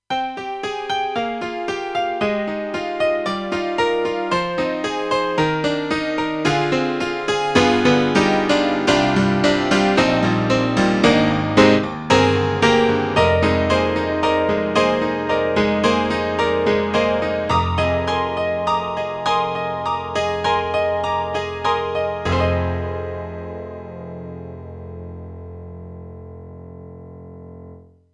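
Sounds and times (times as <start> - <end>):
honky tonk piano synthesizer sound: 0.1 - 28.0.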